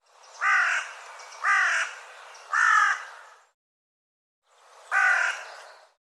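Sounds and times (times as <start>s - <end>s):
bird giving harsh nasal caws: 0.4s - 3.4s, 4.9s - 5.6s.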